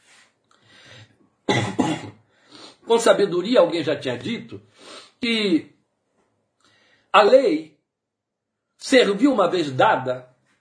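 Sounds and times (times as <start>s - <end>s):
person coughing: 1.5s - 2.2s
speech: 2.9s - 5.8s, 7.1s - 7.7s, 8.8s - 10.3s.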